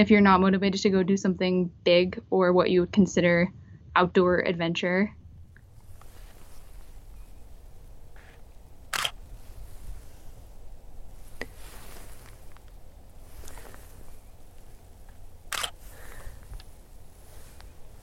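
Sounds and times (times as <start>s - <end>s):
speech: 0.0s - 5.2s
steady outdoor hush: 5.0s - 18.0s
soft rustling: 5.3s - 18.0s
camera shutter releasing: 8.2s - 9.2s, 15.5s - 16.3s.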